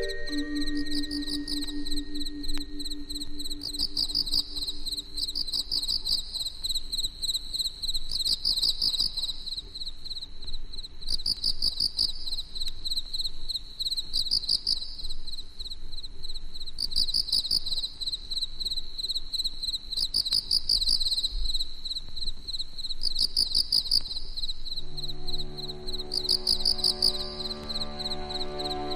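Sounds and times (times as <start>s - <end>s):
sustained low tones: 0.0s - 6.3s, 24.8s - 28.9s
Emma field cricket chirping: 0.0s - 28.9s.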